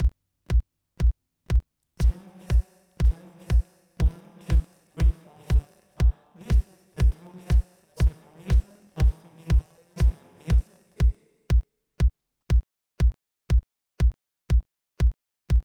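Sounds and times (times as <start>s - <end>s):
separated drum: 0.0s - 15.6s.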